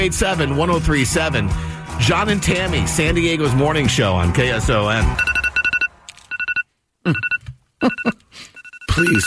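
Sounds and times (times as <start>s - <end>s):
speech: 0.0s - 5.3s, 7.1s - 8.2s, 9.0s - 9.2s
phone alarm with high electronic beeps: 5.2s - 9.2s.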